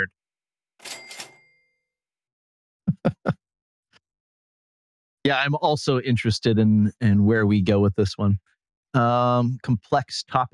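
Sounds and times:
cash register rattling clatter: 0.8 - 1.4
cash register bell ringing: 0.8 - 1.8
laughter: 2.9 - 3.4, 9.0 - 10.4
speech: 5.2 - 10.5.

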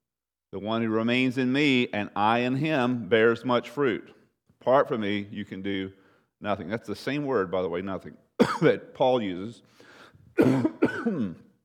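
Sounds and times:
speech: 0.5 - 11.4
person coughing harshly: 8.4 - 8.8, 10.4 - 11.5.

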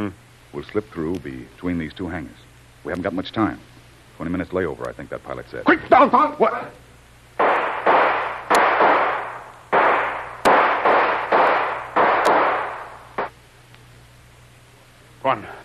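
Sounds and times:
speech: 0.0 - 6.8, 15.3 - 15.6
gunshots: 7.4 - 13.3.

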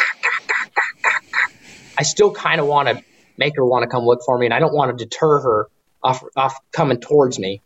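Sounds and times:
imitated hen turkey yelping on a call: 0.0 - 1.6
speech: 2.0 - 7.6.

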